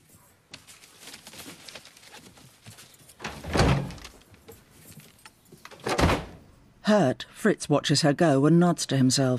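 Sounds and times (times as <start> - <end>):
rustling and shuffling: 0.0 - 6.4
door opening with a thunk: 3.2 - 4.2, 5.7 - 6.4
door closing: 3.2 - 4.3, 5.7 - 6.5
speech: 6.9 - 9.3.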